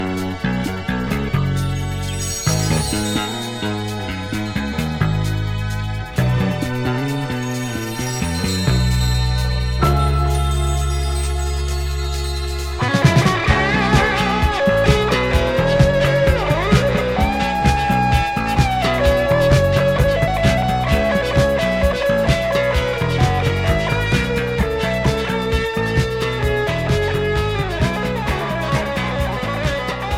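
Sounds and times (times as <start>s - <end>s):
guitar: 0.0s - 30.1s.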